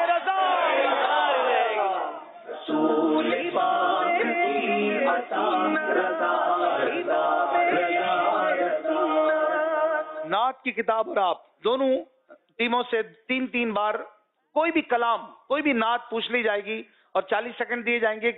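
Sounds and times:
large crowd chanting in response to a slogan: 0:00.0 - 0:10.3
speech: 0:10.6 - 0:18.3.

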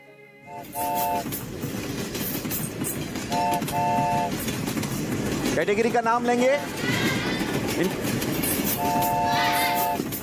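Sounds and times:
train horn blasts: 0:00.5 - 0:01.4, 0:03.3 - 0:04.4, 0:08.7 - 0:10.0
speech: 0:00.5 - 0:01.7, 0:05.6 - 0:07.1, 0:07.8 - 0:08.0
train rumbling along: 0:00.5 - 0:10.2.

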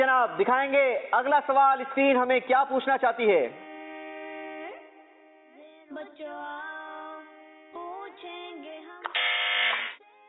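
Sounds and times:
speech: 0:00.0 - 0:03.7, 0:05.9 - 0:06.8
quiz show answer buzzer: 0:09.1 - 0:10.0.

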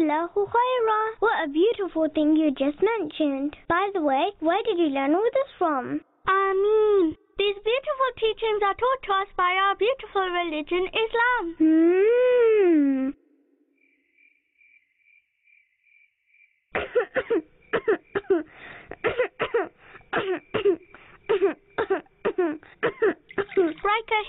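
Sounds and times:
speech: 0:00.0 - 0:13.2, 0:16.7 - 0:24.2
person with a fever coughing: 0:16.8 - 0:23.8.

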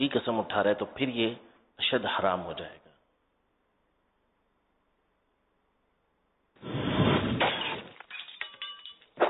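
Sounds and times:
speech: 0:00.0 - 0:02.8
glass bulb, plates, jug and drinking glass shattering: 0:07.4 - 0:09.2
tinkling, ringing glass shards: 0:07.7 - 0:09.2.

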